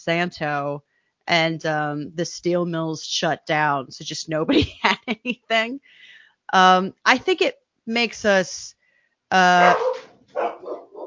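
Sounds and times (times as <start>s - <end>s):
speech: 0.0s - 10.8s
large dog barking: 9.6s - 11.0s.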